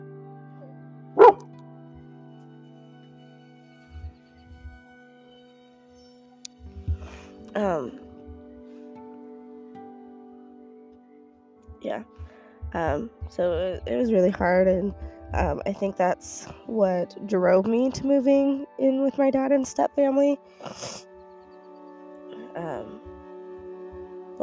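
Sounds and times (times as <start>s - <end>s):
pet dog barking: 1.2s - 1.4s
low thuds: 6.6s - 8.5s, 11.7s - 16.6s
speech: 7.6s - 8.0s, 11.8s - 21.0s.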